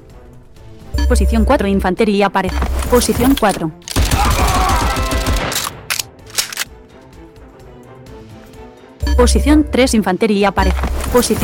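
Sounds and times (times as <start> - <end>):
speech: 1.1 - 3.9, 9.2 - 11.4
rifle gunfire in a video game: 3.9 - 6.7.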